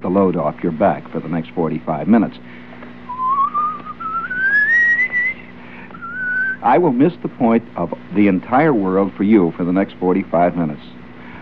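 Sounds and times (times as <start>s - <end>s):
faint low hum: 0.0s - 11.3s
speech: 0.1s - 2.7s, 6.6s - 11.0s
person whistling a slow wavering line: 3.1s - 6.6s.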